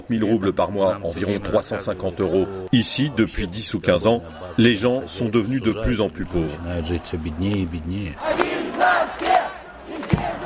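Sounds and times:
speech: 0.1s - 9.3s
large crowd shouting at an outdoor street protest: 3.9s - 10.4s.

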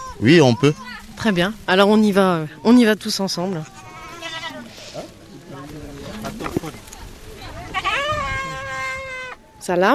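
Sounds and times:
murmur of voices: 0.0s - 9.9s
speech: 0.2s - 3.8s, 9.6s - 9.9s
goats bleating at a goat-rearing project: 3.5s - 5.1s, 7.7s - 9.4s.

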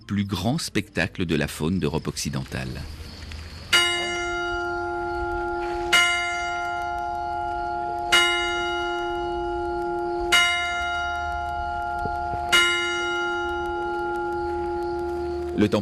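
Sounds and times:
faint outdoor hum: 0.0s - 15.8s
speech: 0.1s - 3.0s, 15.6s - 15.8s
parish church carillon bell striking five o'clock: 3.7s - 15.8s.

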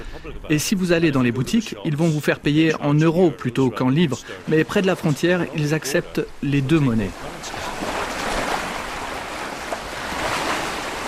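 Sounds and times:
Atlantic ocean surf roaring at sea cliffs: 0.0s - 11.0s
speech: 0.2s - 7.6s
gusting wind at sea cliffs: 4.2s - 11.0s.

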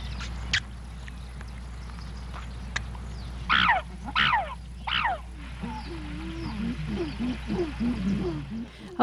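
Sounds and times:
low hum: 0.0s - 9.0s
chimpanzee shrieks: 3.5s - 5.2s.

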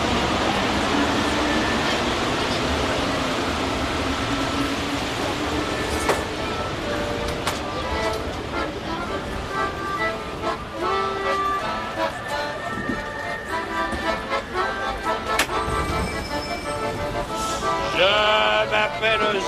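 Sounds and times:
subway train running in a metro: 0.0s - 19.4s.

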